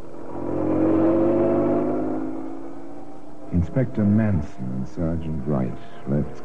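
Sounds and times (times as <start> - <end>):
car engine roaring as the vehicle speeds away: 0.0 - 6.4
speech: 3.6 - 6.4.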